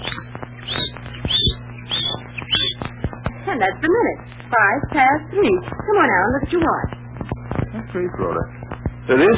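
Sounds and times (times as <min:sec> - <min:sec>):
small bird chirping: 0:00.0 - 0:03.0
low steady hum: 0:00.0 - 0:09.3
speech: 0:03.5 - 0:06.9, 0:07.8 - 0:09.3.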